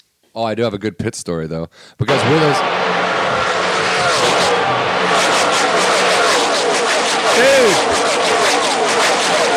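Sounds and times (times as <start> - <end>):
speech: 0.4 - 3.1
race car engines roaring at a race: 2.1 - 9.5.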